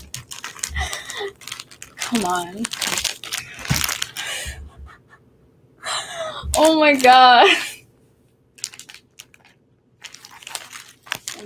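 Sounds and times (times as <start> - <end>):
plastic bag crinkling while being pried open with long fingernails: 0.0 - 4.4, 6.5 - 7.6, 8.5 - 11.4
speech: 2.1 - 2.9, 6.6 - 7.7.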